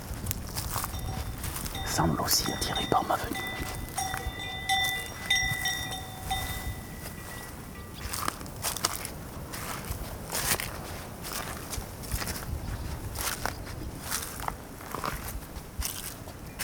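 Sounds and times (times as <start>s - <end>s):
steady wind noise on an open meadow: 0.0s - 16.5s
soft bell tones: 0.7s - 8.6s
speech: 2.0s - 3.8s.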